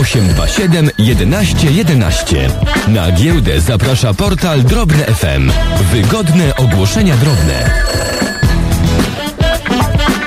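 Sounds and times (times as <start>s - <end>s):
telephone ringing: 0.0s - 2.9s, 6.0s - 9.4s
speech: 0.1s - 8.0s.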